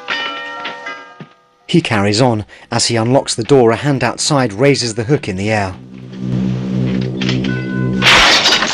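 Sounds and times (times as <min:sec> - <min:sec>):
speech: 0:01.7 - 0:06.0
steady low humming tone: 0:05.0 - 0:08.7.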